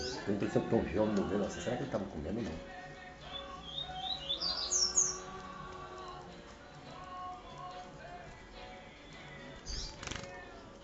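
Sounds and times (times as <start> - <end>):
Double-collared Seedeater song: 0.0 - 0.7, 3.2 - 5.6, 9.6 - 10.2
steady lower tonal background sounds: 0.0 - 9.9.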